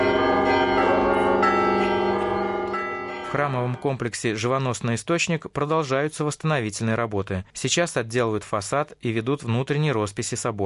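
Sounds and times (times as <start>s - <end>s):
church bells ringing during the raising of a cross onto a church dome in Russia: 0.0s - 4.2s
speech: 3.3s - 10.6s.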